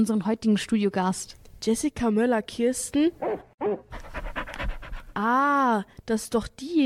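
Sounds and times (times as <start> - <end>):
speech: 0.0 - 4.2, 5.2 - 6.8
dog panting: 3.8 - 5.2.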